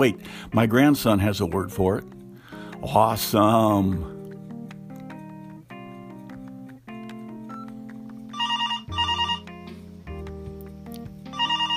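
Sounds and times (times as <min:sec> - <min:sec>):
speech: 0:00.0 - 0:02.2, 0:02.8 - 0:04.2
steady musical backing: 0:00.0 - 0:11.7
telephone ringing: 0:08.3 - 0:09.6, 0:11.3 - 0:11.7.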